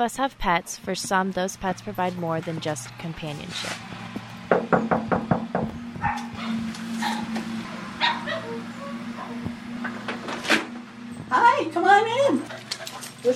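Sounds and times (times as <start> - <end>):
speech: 0.0 - 4.0
steady low household hum: 0.0 - 13.3
sharp knocks on a door: 4.5 - 6.2
small black and white Boston Terrier barking and yipping: 6.0 - 7.3, 8.0 - 9.4.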